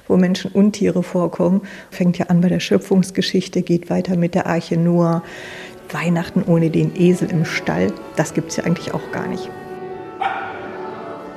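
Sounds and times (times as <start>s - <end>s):
speech: 0.1s - 9.6s
dog barking: 10.2s - 10.7s.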